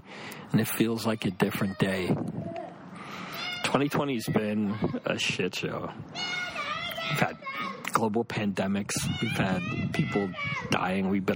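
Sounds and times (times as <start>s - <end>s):
speech: 0.5s - 2.5s, 3.7s - 11.3s
young girl screaming: 2.5s - 3.8s, 6.1s - 7.8s, 9.0s - 10.8s.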